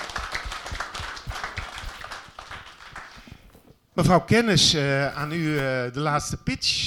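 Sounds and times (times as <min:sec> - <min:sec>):
crowd applauding at a pitch event: 0:00.0 - 0:03.4
speech: 0:04.0 - 0:06.8.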